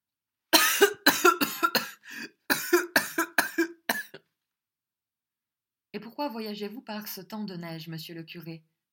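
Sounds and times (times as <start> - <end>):
priest coughing harshly: 0.6 - 4.2
speech: 6.2 - 8.8.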